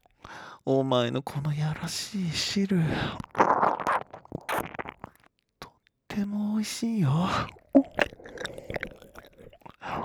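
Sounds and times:
speech: 0.6 - 3.4, 6.2 - 8.1
wet licking and slurping mouth sounds: 2.9 - 5.3, 6.8 - 10.0.

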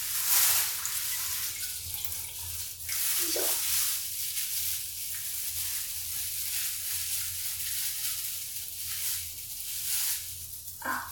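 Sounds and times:
water poured out to rinse something: 0.0 - 11.1.

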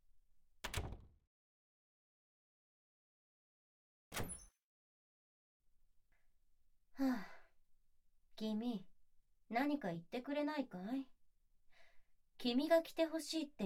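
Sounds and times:
door handle and door moving: 0.6 - 1.1
speech: 7.0 - 7.3, 8.4 - 8.9, 9.5 - 11.1, 12.4 - 13.6.

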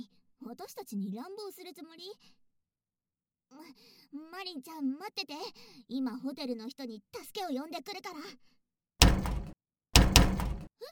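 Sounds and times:
speech: 0.5 - 2.4, 3.5 - 9.3
hotel room door pushed against a malfunctioning auto-lock: 9.0 - 10.7.

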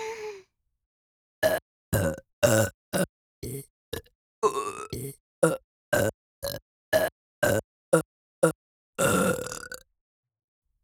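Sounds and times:
rhythmic burping: 1.4 - 9.8.

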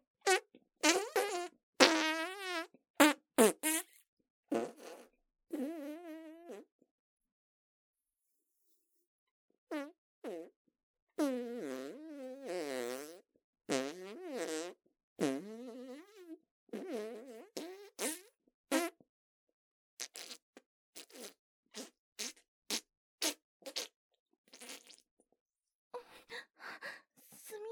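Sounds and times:
farts from a bloated stomach after taking medicine: 0.3 - 6.7, 9.7 - 10.5, 11.2 - 19.0, 20.0 - 25.1.

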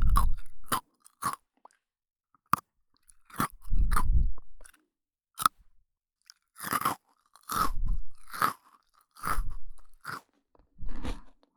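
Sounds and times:
crunching and chewing Pocky biscuit sticks: 0.1 - 1.4, 2.5 - 4.8, 6.2 - 11.4.

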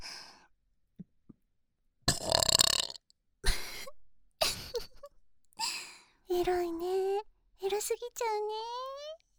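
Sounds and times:
loud throaty burps: 2.1 - 3.0
speech: 6.4 - 7.0, 7.7 - 8.9.

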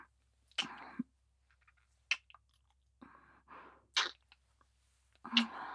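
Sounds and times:
soft wet kissing smacks: 0.6 - 0.8, 3.9 - 4.3, 5.3 - 5.5.

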